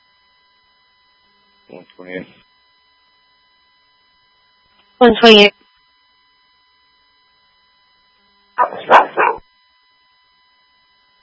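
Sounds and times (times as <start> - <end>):
speech: 1.7 - 2.5, 5.0 - 5.6
dog barking: 8.6 - 9.4.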